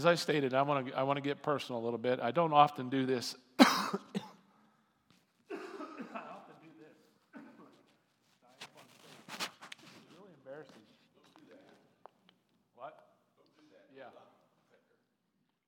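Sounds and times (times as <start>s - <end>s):
speech: 0.0s - 4.2s
person clearing their throat: 3.6s - 4.4s, 5.5s - 6.4s, 7.4s - 7.8s
person coughing: 3.6s - 4.4s, 5.5s - 6.4s.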